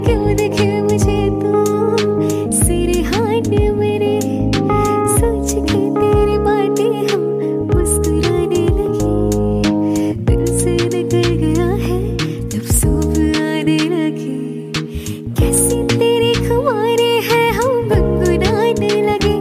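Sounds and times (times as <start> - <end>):
love song ringtone sung by a woman: 0.0 - 19.3.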